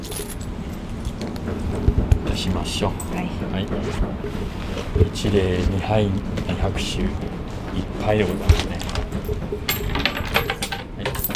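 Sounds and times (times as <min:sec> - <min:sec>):
coins tossed into an old wooden shrine offering box: 0:00.0 - 0:00.5, 0:09.7 - 0:11.3
steady outdoor noise: 0:00.0 - 0:11.3
speech: 0:02.4 - 0:08.7, 0:09.3 - 0:10.0.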